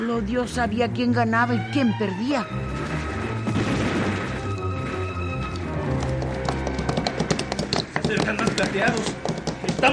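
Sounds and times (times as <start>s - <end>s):
speech: 0.1s - 3.2s, 8.1s - 9.1s
many horses galloping with hooves clattering: 4.6s - 9.9s.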